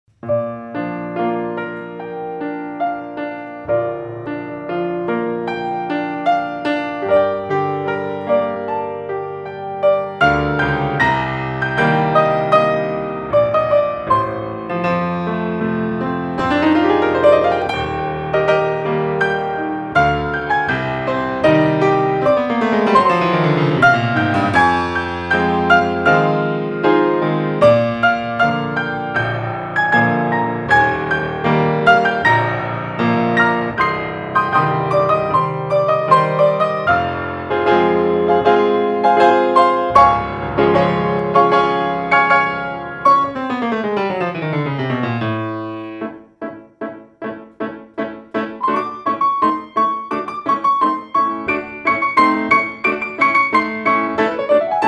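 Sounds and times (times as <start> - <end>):
basic Bohemian piano: 0.1 - 54.8.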